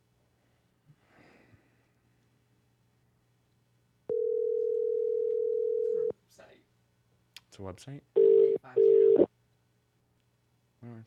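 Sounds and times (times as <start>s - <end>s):
loud harsh alarm-like electronic telephone tone: 4.1s - 6.1s, 8.2s - 9.3s
speech: 7.6s - 8.8s.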